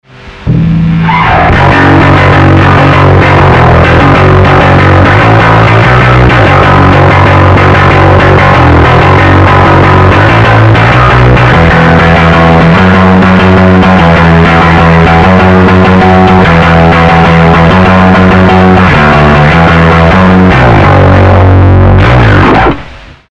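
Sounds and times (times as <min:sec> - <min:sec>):
full-throttle bass through direct input: 0:00.0 - 0:23.3.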